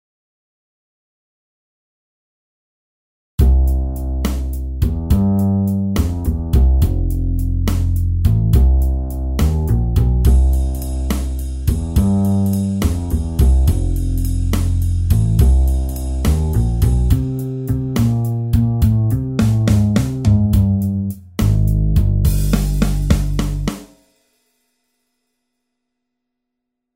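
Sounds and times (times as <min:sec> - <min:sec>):
blues music: 0:03.4 - 0:23.8.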